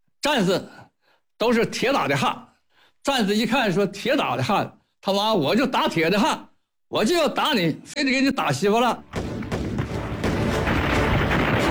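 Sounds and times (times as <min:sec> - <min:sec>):
speech: 0:00.2 - 0:00.8, 0:01.4 - 0:09.3
concentrated artillery fire striking enemy bunkers in a wartime battle: 0:09.0 - 0:11.7.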